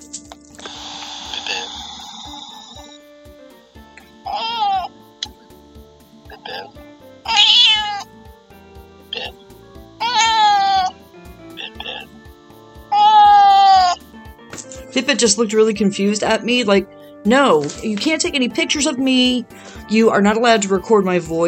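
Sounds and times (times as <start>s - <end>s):
cat meowing: 4.3s - 4.9s, 7.3s - 8.1s, 10.0s - 10.9s, 12.9s - 14.0s
speech: 15.1s - 21.4s.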